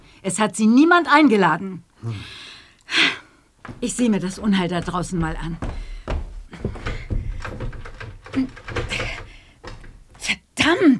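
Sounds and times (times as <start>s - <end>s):
speech: 0.2s - 2.4s, 3.8s - 5.8s
stuck wooden door shoved and rattled: 3.6s - 10.4s.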